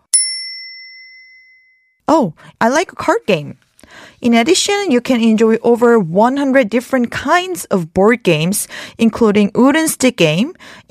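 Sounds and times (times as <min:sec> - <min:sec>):
tabletop game bell rung in a fruit card game: 0:00.1 - 0:02.0
speech: 0:02.1 - 0:10.8.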